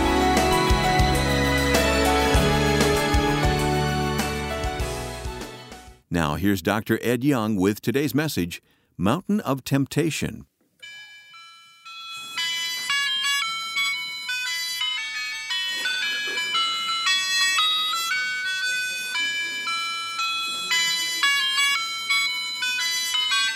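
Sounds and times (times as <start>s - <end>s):
music-box style ice cream truck jingle: 0.0s - 5.8s, 10.8s - 23.5s
speech: 6.1s - 10.5s.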